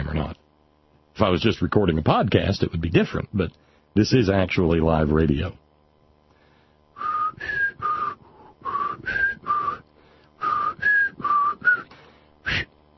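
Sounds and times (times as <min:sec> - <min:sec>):
speech: 0:01.2 - 0:05.6
person whistling a short tune: 0:07.0 - 0:09.8, 0:10.4 - 0:11.9, 0:12.5 - 0:12.9.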